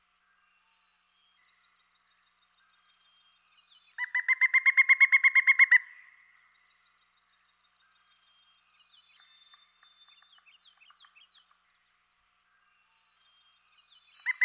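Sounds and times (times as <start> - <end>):
pileated woodpecker call series of hollow ringing notes: 4.0 - 6.1, 14.2 - 14.4.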